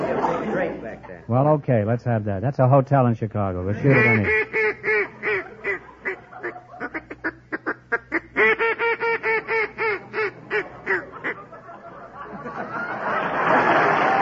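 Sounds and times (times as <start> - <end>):
laughter: 0.0 - 1.2, 3.6 - 7.7, 8.5 - 14.1
speech: 0.5 - 4.6
duck call blown imitating duck quacks: 3.8 - 11.4.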